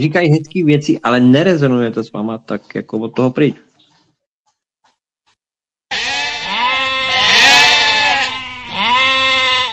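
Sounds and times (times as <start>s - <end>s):
speech: 0.0s - 3.6s
sheep bleating: 5.9s - 9.7s.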